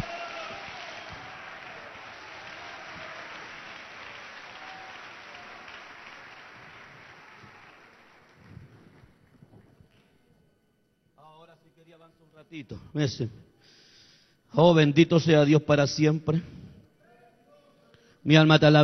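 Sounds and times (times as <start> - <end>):
audience applause: 0.0 - 9.4
speech: 11.9 - 13.4, 14.6 - 16.6, 18.2 - 18.8.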